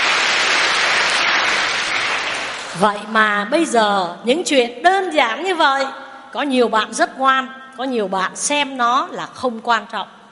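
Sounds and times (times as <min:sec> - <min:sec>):
large audience applauding: 0:00.0 - 0:02.8
speech: 0:02.8 - 0:10.2.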